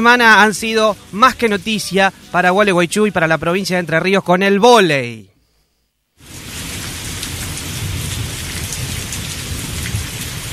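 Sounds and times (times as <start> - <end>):
heavy rain pouring off a radio station's roof: 0.0 - 3.6, 6.2 - 10.5
speech: 0.0 - 5.3.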